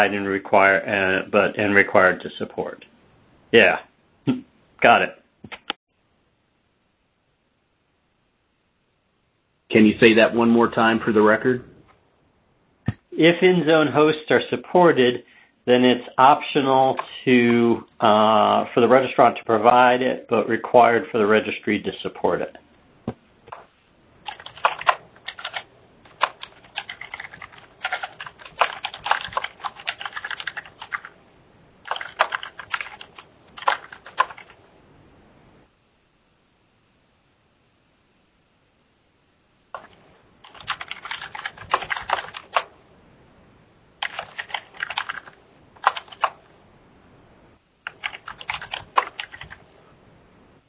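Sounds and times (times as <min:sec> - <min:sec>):
speech: 0:00.0 - 0:02.9, 0:03.5 - 0:05.6, 0:09.7 - 0:11.7, 0:13.2 - 0:22.6
fingers typing notes on a computer keyboard: 0:24.3 - 0:31.1, 0:31.8 - 0:34.6, 0:39.8 - 0:42.7, 0:44.0 - 0:46.4, 0:47.9 - 0:49.6.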